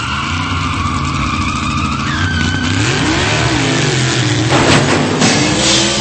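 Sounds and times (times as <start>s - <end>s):
brief sharp squeals: 0.0s - 4.4s
motorcycle engine revving while driven up an escalator: 0.0s - 6.0s.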